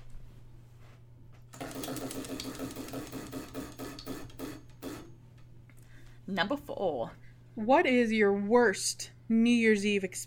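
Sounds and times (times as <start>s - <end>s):
wheel of questions spinning with ticking clicks: 1.6s - 5.1s
speech: 1.9s - 3.0s, 6.3s - 10.2s.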